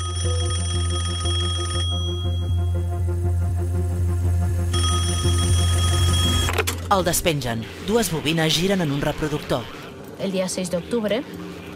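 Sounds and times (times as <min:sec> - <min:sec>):
telephone on a small table in a living room ringing: 0:00.0 - 0:02.7, 0:04.8 - 0:06.6
low hum: 0:01.8 - 0:10.1
speech: 0:06.9 - 0:11.4.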